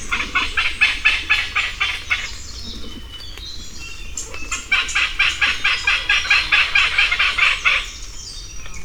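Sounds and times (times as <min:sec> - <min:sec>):
Malabar pied hornbill cackling: 0:00.0 - 0:08.1.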